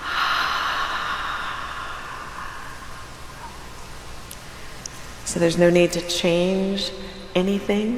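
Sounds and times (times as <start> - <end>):
slow breath in through the nose and out through the mouth: 0.0 - 5.3
speech: 5.3 - 7.9.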